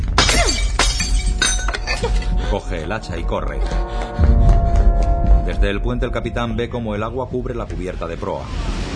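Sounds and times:
glass case smashed with metal fire hose nozzle on a flooding ship: 0.1s - 2.3s
speech: 2.1s - 4.3s, 5.5s - 8.8s.

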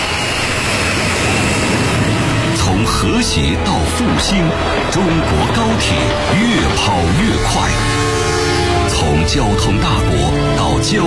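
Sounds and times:
domestically built large passenger jet taking off: 0.0s - 11.0s
speech: 3.0s - 8.1s, 8.9s - 11.0s.

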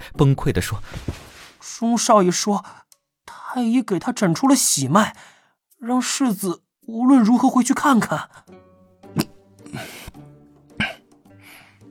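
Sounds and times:
speech: 0.1s - 2.8s, 3.6s - 8.6s, 9.7s - 10.1s
people coughing after choking on tea in a heated chamber: 10.8s - 11.0s.

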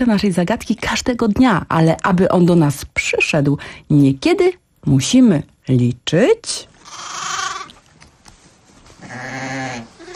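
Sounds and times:
speech: 0.0s - 7.3s
sheep bleating: 6.8s - 7.7s, 9.0s - 10.1s.

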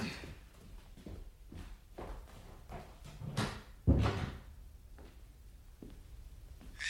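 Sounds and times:
faint knocks and shuffles: 0.0s - 6.8s
door being pulled shut: 3.4s - 4.5s.

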